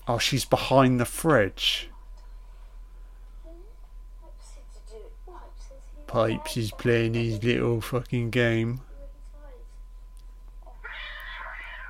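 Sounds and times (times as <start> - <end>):
speech: 0.1 - 1.9, 6.1 - 8.9
cat meowing: 10.8 - 11.8.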